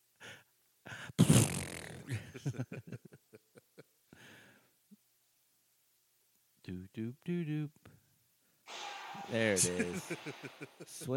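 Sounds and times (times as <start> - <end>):
loud raspy fart: 1.2 - 2.1
speech: 7.0 - 7.9, 9.3 - 11.1
laughter: 9.4 - 11.1.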